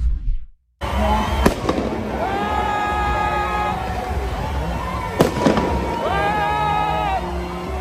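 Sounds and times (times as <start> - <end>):
busy outdoor crowd din: 0.8 - 7.8
shrill whistling tones: 0.8 - 7.8
fireworks bangs: 1.2 - 6.4.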